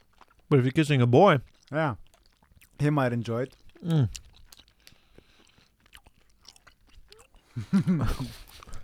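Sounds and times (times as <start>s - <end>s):
men chewing sour gum: 0.0s - 8.8s
speech: 0.5s - 2.1s, 2.8s - 4.2s, 7.6s - 8.4s.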